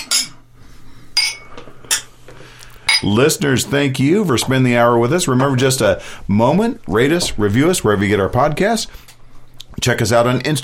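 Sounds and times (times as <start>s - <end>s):
beer glasses clinking in a toast: 1.2s - 2.1s, 2.9s - 3.2s
speech: 3.0s - 9.0s, 9.8s - 10.6s.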